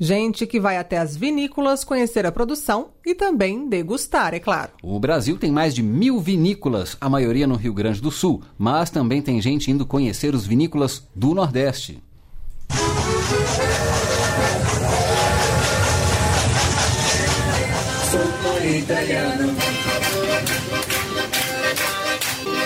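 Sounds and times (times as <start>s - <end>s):
speech: 0.0s - 12.1s
steady low rumble from a moving passenger train wagon: 12.7s - 21.3s
lively music inside a moving tourist train passenger car: 12.7s - 22.6s
rhythmic clapping: 12.7s - 22.6s.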